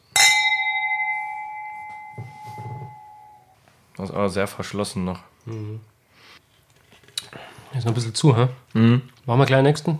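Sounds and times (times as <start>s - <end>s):
two wine glasses clinking in a toast while tasting Kabinett wine: 0.0s - 3.6s
speech: 4.0s - 5.9s, 7.7s - 9.9s.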